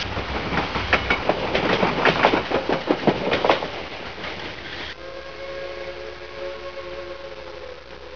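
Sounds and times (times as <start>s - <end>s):
steam locomotive: 0.0s - 8.1s
steam locomotive whistle: 4.9s - 8.1s.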